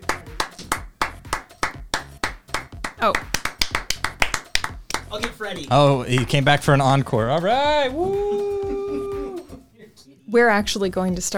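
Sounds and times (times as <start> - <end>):
applause from a small group: 0.0 - 5.4, 6.1 - 6.6
speech: 3.0 - 3.4, 5.1 - 8.6, 10.3 - 11.3.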